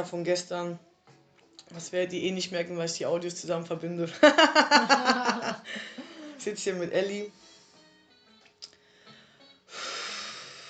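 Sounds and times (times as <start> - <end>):
speech: 0.0 - 0.9, 1.7 - 7.4
laughter: 4.2 - 6.4
heavy breathing with long airy exhale: 5.6 - 6.4, 8.7 - 10.6.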